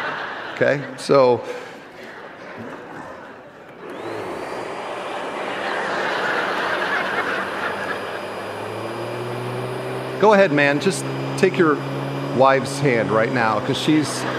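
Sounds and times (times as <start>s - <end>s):
laughter: 0.0s - 14.3s
speech: 0.6s - 1.7s, 2.6s - 2.8s, 10.2s - 14.3s
vacuum cleaner running: 3.7s - 14.3s.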